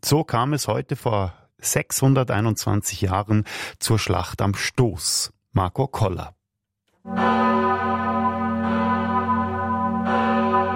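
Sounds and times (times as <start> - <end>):
speech: 0.0 - 6.4, 7.0 - 7.6
large parish church bell ringing: 7.1 - 10.7.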